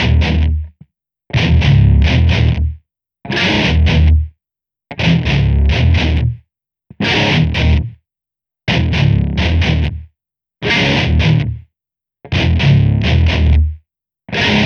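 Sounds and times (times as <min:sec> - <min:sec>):
rock guitar: 0:00.0 - 0:00.7, 0:01.3 - 0:04.3, 0:04.9 - 0:06.4, 0:07.0 - 0:08.0, 0:08.7 - 0:10.0, 0:10.6 - 0:11.6, 0:12.3 - 0:14.6.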